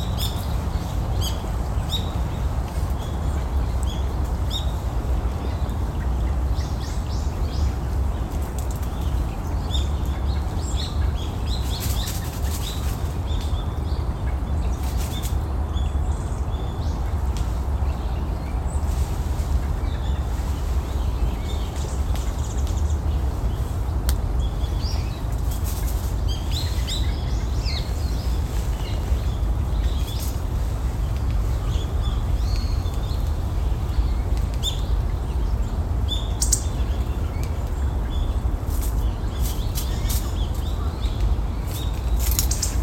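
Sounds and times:
small birds giving short call notes and chirps: 0.0s - 42.8s.

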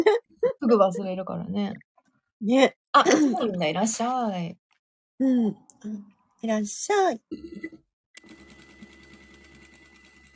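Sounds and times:
speech: 0.0s - 4.6s, 5.2s - 7.8s
sewing machine running: 8.2s - 10.3s.

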